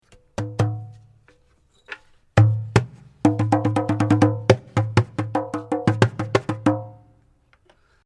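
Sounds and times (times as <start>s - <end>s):
membranophone: 0.3s - 1.0s, 2.4s - 7.0s.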